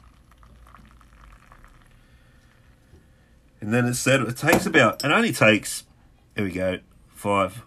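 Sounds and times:
beer freshly poured from a just-opened bottle fizzing in a glass: 0.0s - 3.0s
speech: 3.6s - 7.6s.

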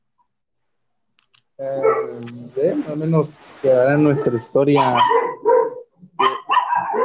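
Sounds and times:
speech: 1.6s - 5.2s
dog barking: 1.7s - 2.4s, 4.0s - 7.0s.

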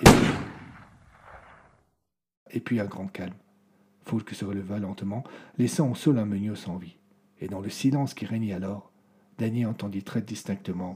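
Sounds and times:
gunshot: 0.0s - 1.8s
speech: 2.5s - 3.4s, 4.0s - 10.9s.

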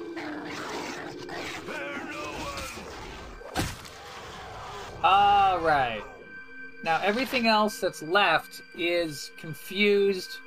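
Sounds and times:
video game wolf snarling and growling: 0.0s - 5.2s
speech: 5.6s - 6.1s, 6.8s - 10.4s.

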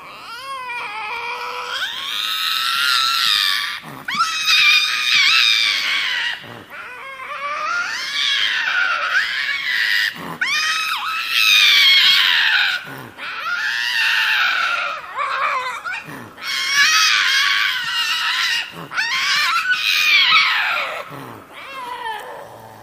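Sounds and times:
lynx screaming in long wailing high-pitched yowls: 1.3s - 22.1s.

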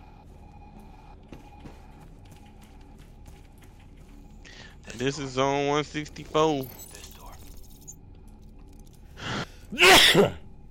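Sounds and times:
speech: 4.9s - 6.9s, 9.7s - 10.4s
person sneezing: 9.8s - 10.4s.

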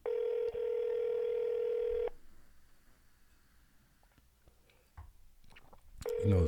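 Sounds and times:
phone line ring tone through an earpiece: 0.0s - 2.2s, 6.0s - 6.4s.

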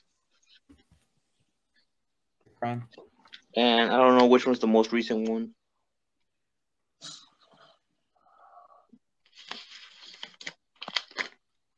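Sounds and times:
speech: 2.6s - 5.6s
paper package being torn open: 9.3s - 11.4s.

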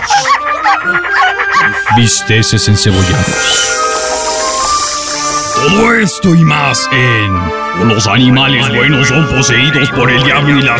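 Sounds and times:
several dogs barking and howling: 0.0s - 6.7s
speech: 0.8s - 4.0s, 5.6s - 10.7s.

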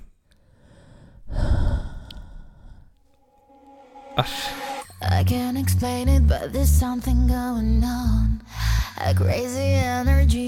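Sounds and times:
heavy breathing into a microphone: 0.4s - 3.0s, 8.5s - 9.0s
speech: 4.2s - 10.4s.

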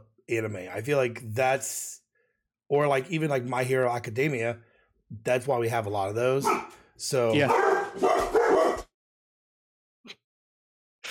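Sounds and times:
speech: 0.3s - 2.0s, 2.7s - 8.4s
dog yipping: 6.4s - 6.7s, 7.5s - 8.8s
dogs barking: 6.4s - 6.8s, 7.4s - 8.9s.

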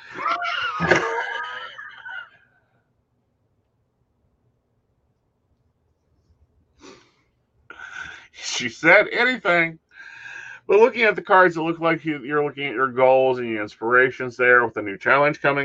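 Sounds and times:
laughter: 0.0s - 2.4s
heavy voiced breath like a long sighing exhale: 6.8s - 8.4s, 9.9s - 10.7s
speech: 8.6s - 9.8s, 10.7s - 15.6s.

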